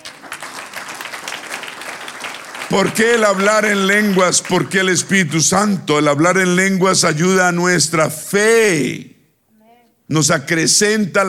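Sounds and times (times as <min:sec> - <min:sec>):
audience applauding: 0:00.0 - 0:05.8
speech: 0:02.7 - 0:09.2, 0:10.1 - 0:11.2.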